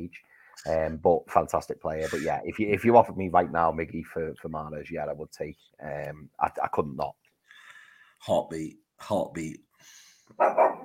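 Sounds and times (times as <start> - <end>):
speech: 0.0 - 7.2, 8.2 - 10.8
dog barking: 10.4 - 10.8.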